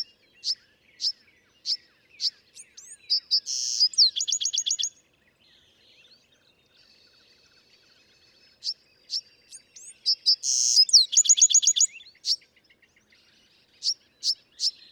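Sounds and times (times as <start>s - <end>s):
Bewick's wren song with sharp high chips, buzzy burst and fast dry trill: 0.0s - 5.0s, 8.4s - 14.8s.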